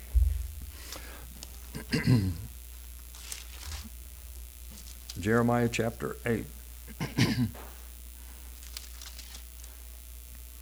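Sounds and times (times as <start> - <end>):
person coughing from a persistent tickle in the lungs: 1.7 - 2.5, 6.9 - 7.7
speech: 1.9 - 2.4, 5.2 - 7.7.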